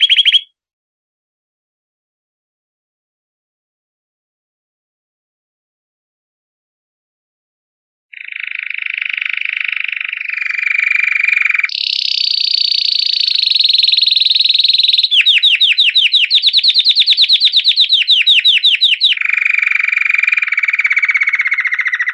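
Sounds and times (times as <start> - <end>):
canary song in rapid rolling tours: 0.0 - 0.5, 8.1 - 22.1.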